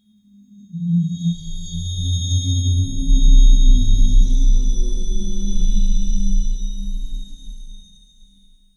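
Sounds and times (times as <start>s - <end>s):
trippy creepy ambience: 1.1s - 8.0s.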